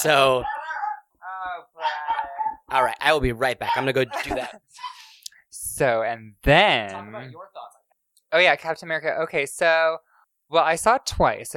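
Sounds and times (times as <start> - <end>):
speech: 0.0 - 0.5, 2.7 - 4.9, 5.8 - 7.7, 8.3 - 11.5
female dog barking at a passing car: 0.4 - 1.1
laughter: 3.8 - 5.0.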